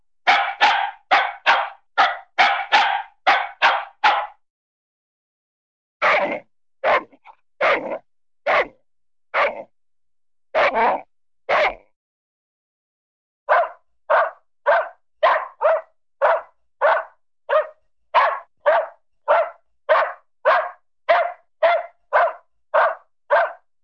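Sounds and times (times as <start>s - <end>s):
small dog barking: 0.3s - 4.4s, 6.0s - 8.8s, 9.4s - 9.7s, 10.6s - 11.9s, 13.5s - 23.7s.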